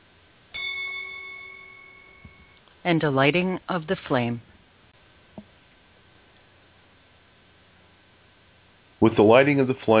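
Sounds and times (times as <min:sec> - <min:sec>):
ceremonial bell ringing: 0:00.6 - 0:02.7
speech: 0:02.8 - 0:04.5, 0:09.1 - 0:09.9.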